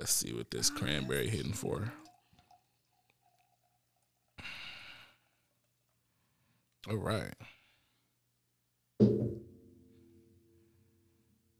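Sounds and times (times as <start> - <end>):
speech: 0.1 - 2.1, 6.8 - 7.6
faint scattered drips: 0.6 - 7.0
liquor pouring into a glass: 0.7 - 6.2.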